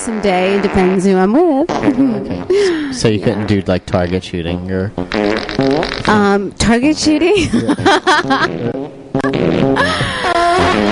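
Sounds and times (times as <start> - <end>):
loud farts: 0.0 - 2.5, 3.2 - 4.2, 5.0 - 6.4, 8.4 - 10.9
speech: 0.0 - 10.0
laughter: 7.4 - 8.8, 9.8 - 10.9.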